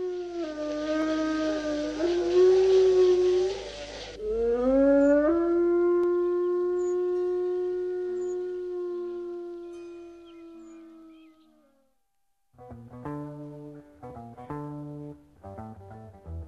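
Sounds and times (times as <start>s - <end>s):
wolf howling in Spain: 0.0s - 11.8s.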